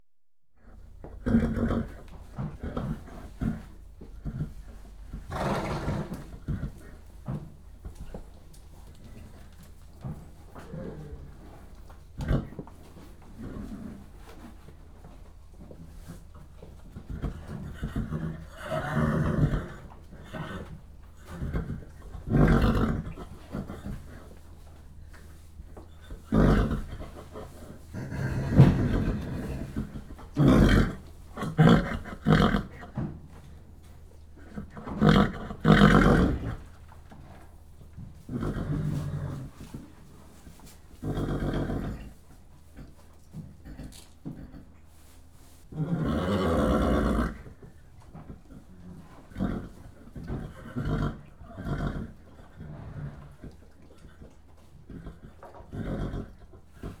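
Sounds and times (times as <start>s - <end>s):
horses whickering in stables: 0.6s - 45.1s, 45.7s - 56.9s.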